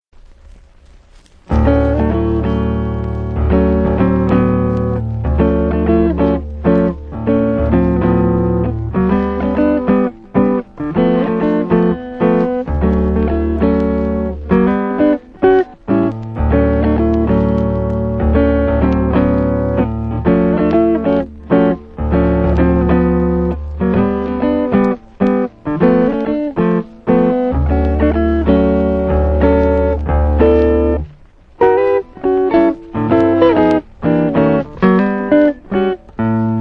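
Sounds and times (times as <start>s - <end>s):
1960 guitar music bed for promos and PSAs: 0.2s - 36.5s.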